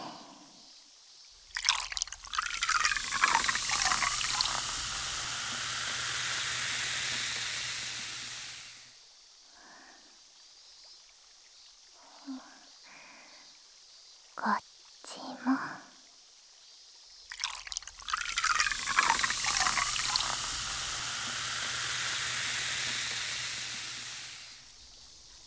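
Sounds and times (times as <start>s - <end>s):
liquid poured beside the listener's ear: 1.4s - 8.8s, 17.3s - 25.4s.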